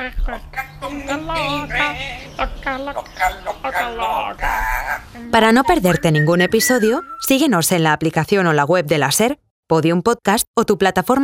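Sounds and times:
parrot chattering in speech-like squawks and warbling whistles: 0.0s - 7.2s
speech: 0.1s - 11.2s.

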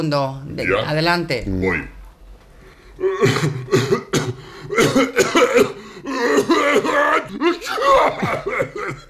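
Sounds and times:
speech: 0.0s - 2.0s, 3.0s - 4.0s, 4.8s - 9.0s
person making exaggerated combined sneeze and cough: 3.2s - 9.0s.

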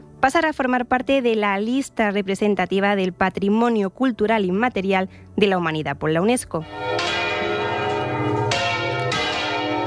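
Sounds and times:
speech: 0.2s - 7.2s
church bells rung by hand: 6.6s - 9.8s.

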